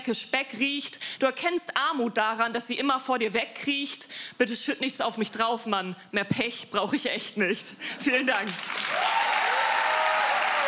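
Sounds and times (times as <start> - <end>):
speech: 0.0 - 9.1
sizable audience applauding: 8.5 - 10.6.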